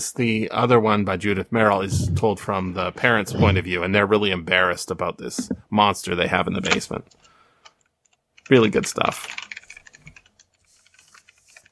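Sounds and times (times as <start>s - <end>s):
speech: 0.0s - 7.3s, 8.5s - 9.4s
noisy computer keyboard typing: 8.0s - 11.6s.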